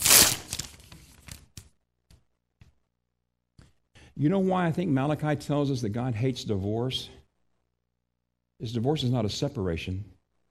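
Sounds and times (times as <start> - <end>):
glued sheets of paper being torn apart: 0.0 - 1.4
speech: 4.2 - 7.2, 8.6 - 10.2.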